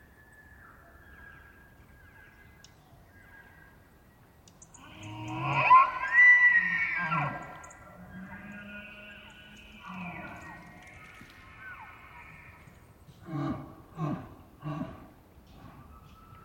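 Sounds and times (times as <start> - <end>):
elk bull bugling during the rut: 4.7 - 15.0.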